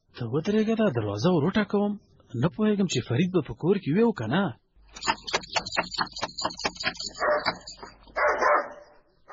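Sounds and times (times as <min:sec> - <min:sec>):
speech: 0:00.2 - 0:05.1
dog barking at a house door: 0:07.0 - 0:09.3.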